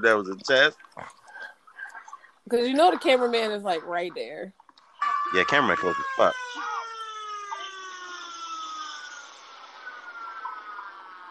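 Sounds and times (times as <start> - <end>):
speech: 0.0 - 1.2, 2.5 - 4.6, 5.2 - 6.8
wailing siren in a movie scene: 5.0 - 11.2.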